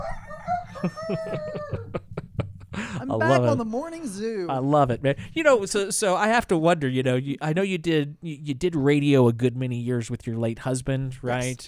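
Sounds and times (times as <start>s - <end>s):
rooster crowing: 0.0s - 2.0s
laughter: 0.7s - 3.7s
speech: 0.8s - 2.0s, 3.1s - 11.6s.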